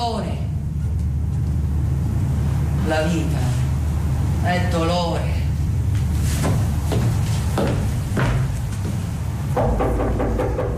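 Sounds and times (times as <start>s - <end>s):
low rumble: 0.0s - 10.7s
speech: 2.9s - 3.6s, 4.4s - 5.4s
knocking on a wooden door: 9.6s - 10.7s.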